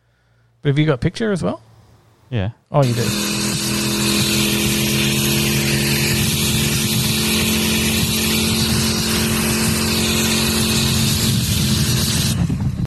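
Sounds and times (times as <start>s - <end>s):
speech: 0.6s - 1.7s, 2.3s - 3.4s
Holden Centura car engine roaring on a track with skid tyres: 2.8s - 12.8s.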